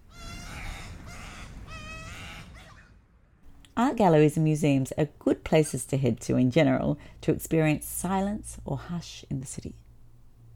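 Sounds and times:
baby koel chick squawking for food: 0.0s - 2.8s
speech: 3.8s - 9.8s.

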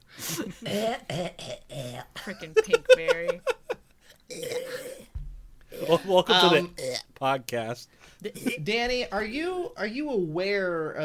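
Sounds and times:
person coughing roughly and clearing their throat: 0.3s - 2.3s, 4.3s - 5.1s, 8.2s - 8.6s
speech: 0.3s - 3.6s, 5.9s - 11.0s
laughter: 2.2s - 3.9s.

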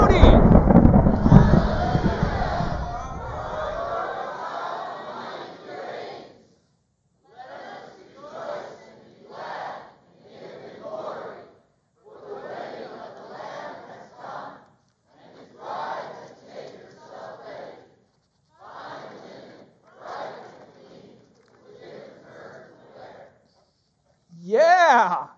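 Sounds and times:
large seated audience roaring and shouting in celebration: 0.0s - 4.4s
scattered bursts of cheering and raised voices: 0.0s - 5.4s.

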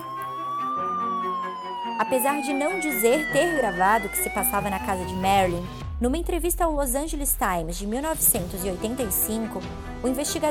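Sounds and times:
ambulance siren wailing: 0.0s - 5.9s
speech: 2.0s - 10.4s.

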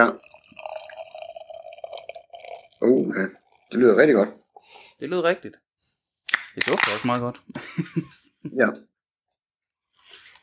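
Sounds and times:
speech: 0.0s - 0.2s, 2.8s - 4.4s, 5.0s - 5.6s, 6.6s - 8.9s
beer pouring into a glass: 0.0s - 4.0s
laughter: 7.5s - 8.2s.

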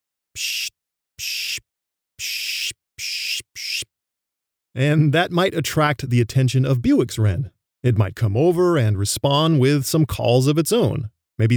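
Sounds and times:
speech: 0.4s - 1.4s, 4.8s - 11.5s
birder pishing in scrubby woodland to attract birds: 0.4s - 1.6s, 2.2s - 3.8s.

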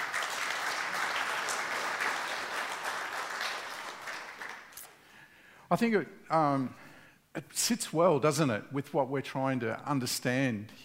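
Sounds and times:
audience applause for a speaker: 0.0s - 4.8s
speech: 5.7s - 10.8s.

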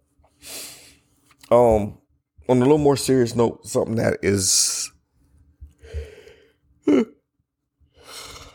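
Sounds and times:
speech: 1.5s - 4.9s
drawn-out voiced yawn: 6.8s - 7.2s.

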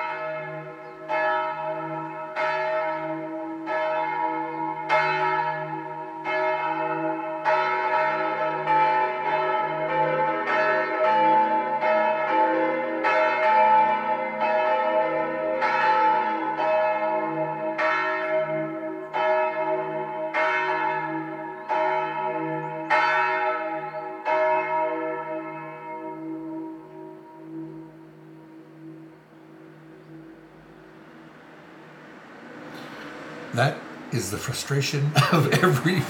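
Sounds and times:
church bells of a small village chapel ringing: 0.0s - 34.5s
speech: 33.6s - 36.0s
laughter: 34.8s - 36.0s.

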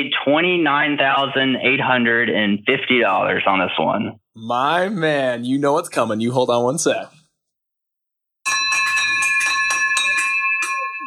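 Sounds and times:
speech: 0.0s - 7.2s
victory bell ringing: 8.5s - 11.0s.

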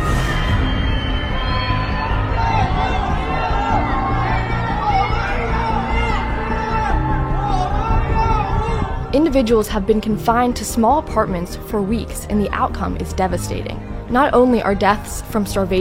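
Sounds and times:
many people screaming and wailing from apartments across a city: 0.0s - 9.4s
speech: 9.3s - 15.7s.

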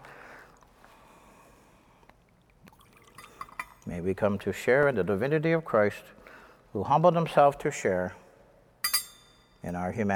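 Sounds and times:
soft drips: 1.6s - 4.1s
water poured into wine in a chalice: 2.2s - 4.1s
speech: 3.9s - 6.2s, 6.8s - 8.2s, 9.6s - 10.1s
light clinks: 8.8s - 9.6s.

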